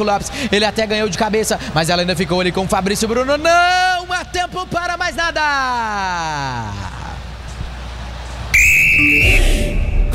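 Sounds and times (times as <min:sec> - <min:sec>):
speech: 0:00.0 - 0:06.9
noise at a football arena: 0:00.0 - 0:10.1
referee's final whistle ending a football match at an arena: 0:08.6 - 0:10.1.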